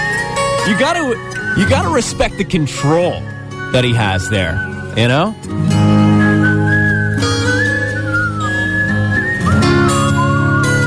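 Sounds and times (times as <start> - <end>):
rich droning instrumental backing: 0.0 - 10.8
speech: 0.7 - 5.7
person whistling a tune: 1.2 - 2.2, 4.1 - 10.8.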